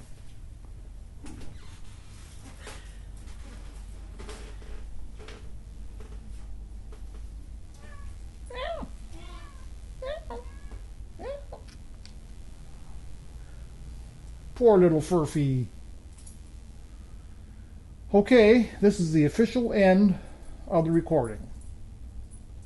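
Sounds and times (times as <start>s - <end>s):
steady low hum: 0.0s - 22.6s
female cat meowing: 7.8s - 11.6s
speech: 14.6s - 15.8s, 18.1s - 21.5s.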